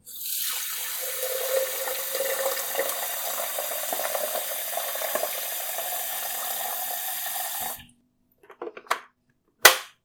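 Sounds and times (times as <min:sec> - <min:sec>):
water boiler: 0:00.0 - 0:07.9.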